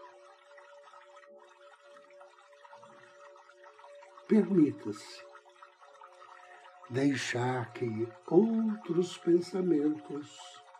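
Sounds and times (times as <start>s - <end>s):
soft running water: 0.0s - 10.7s
speech: 4.3s - 5.3s, 6.9s - 10.6s.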